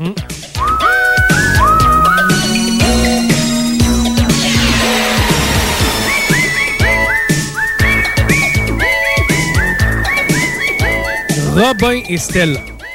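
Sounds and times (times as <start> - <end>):
instrumental music: 0.4 - 12.5
person whistling a melody: 0.6 - 10.6
speech: 11.7 - 12.7.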